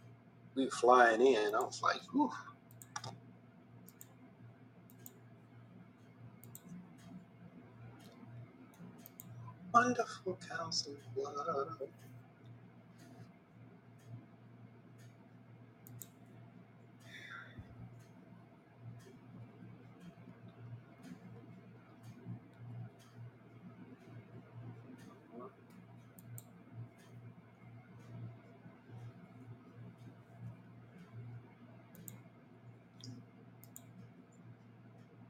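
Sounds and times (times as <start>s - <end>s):
speech: 0.6s - 2.5s, 9.8s - 12.1s
sharp irregular clicks: 2.7s - 3.2s, 3.8s - 4.2s, 4.8s - 10.0s, 14.0s - 14.3s, 14.9s - 35.2s.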